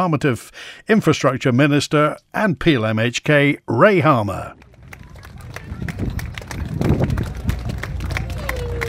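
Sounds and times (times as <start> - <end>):
speech: 0.0 - 4.6
large outdoor crowd murmuring at a harbour: 4.6 - 8.8.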